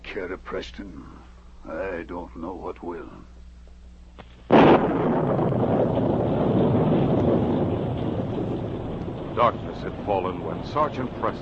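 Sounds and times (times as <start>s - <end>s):
speech: 0.2s - 3.4s, 4.8s - 5.8s, 9.4s - 11.3s
heavy sustained rumble of a violent storm: 4.5s - 11.3s
sharp loud thunderclap: 4.5s - 11.3s.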